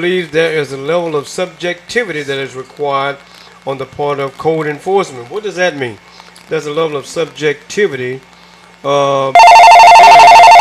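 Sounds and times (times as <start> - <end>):
speech: 0.0 - 10.0
telephone ringing with an incoming call on a call-in line: 9.4 - 10.5.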